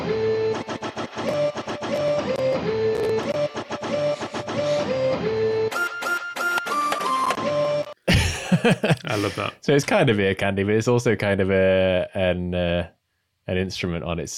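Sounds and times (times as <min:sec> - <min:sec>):
steady pitched tones: 0:00.0 - 0:08.0
printer mapped to MIDI whirring and clicking: 0:00.4 - 0:07.4
laughter: 0:08.1 - 0:09.6
speech: 0:08.6 - 0:14.3.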